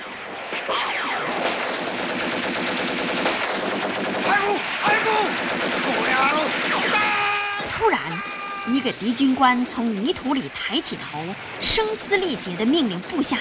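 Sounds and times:
machine gun and rifle fire in a battle: 0.2s - 8.8s
speech: 7.8s - 13.4s.

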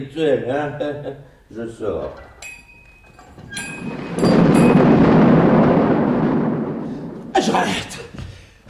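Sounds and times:
speech: 0.0s - 2.3s, 7.4s - 8.1s
thunder with lightning: 3.4s - 8.6s.

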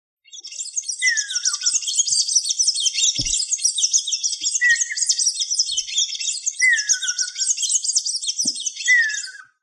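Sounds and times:
bird chattering chirps: 0.3s - 9.4s
soft knocks: 3.2s - 3.4s.

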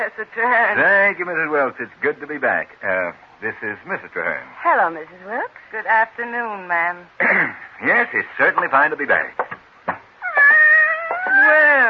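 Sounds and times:
speech: 0.0s - 9.5s
tortoiseshell cat meowing: 10.2s - 11.8s.

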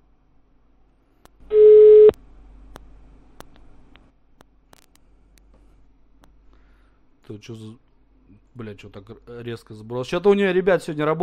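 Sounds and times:
telephone busy signal after redialing: 1.5s - 2.1s
speech: 7.3s - 7.8s, 8.6s - 11.2s.

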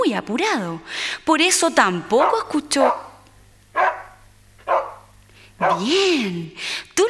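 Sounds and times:
faint low hum: 0.0s - 6.7s
speech: 0.1s - 3.0s, 5.6s - 7.0s
dog barking: 2.1s - 6.4s.

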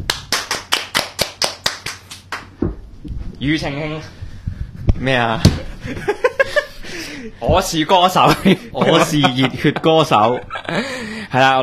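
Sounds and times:
audience clapping rhythmically after a song on stage: 0.0s - 2.6s
speech: 3.4s - 4.2s, 5.0s - 6.2s, 7.2s - 11.6s
laughter: 5.7s - 7.4s, 8.2s - 11.2s.

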